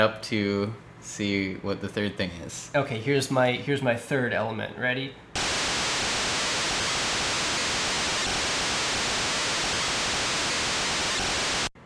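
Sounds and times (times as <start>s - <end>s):
speech: 0.0s - 5.2s
broadband static noise from chiptune software: 5.4s - 11.8s.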